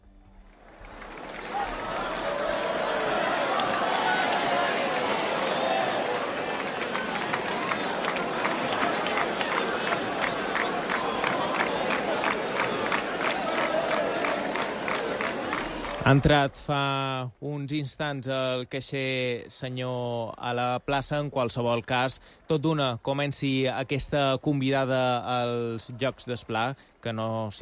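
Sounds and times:
dense festival crowd roar in a town square: 0.5 - 16.5
speech: 16.1 - 27.6.

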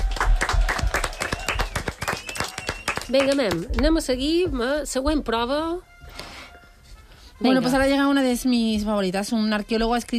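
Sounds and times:
rhythmic clapping from a small group: 0.0 - 4.8
speech: 3.1 - 5.9, 7.4 - 10.1.

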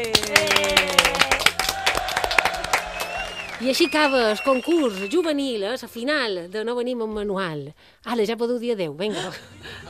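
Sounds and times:
crowd applause at the final of a youth contest: 0.0 - 5.3
speech: 3.6 - 9.8.

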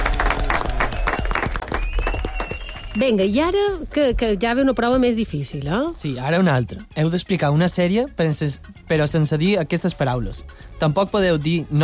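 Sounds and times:
audience applause at a quiz game: 0.0 - 3.0
speech: 3.0 - 11.8.

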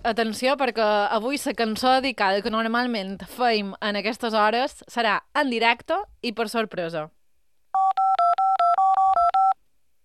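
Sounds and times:
speech: 0.0 - 7.2
touch-tone telephone keypad DTMF dialing beeps: 7.8 - 9.6.

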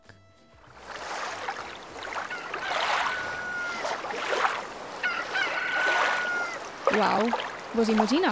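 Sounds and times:
steady wash of waves or wind: 0.8 - 8.2
rooster crowing: 2.2 - 6.8
speech: 7.0 - 8.2.

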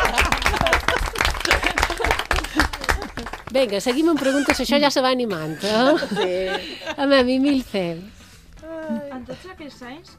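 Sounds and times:
crowd applauding: 0.0 - 4.8
laughter: 0.0 - 7.6
speech: 3.6 - 8.2, 8.9 - 10.1.

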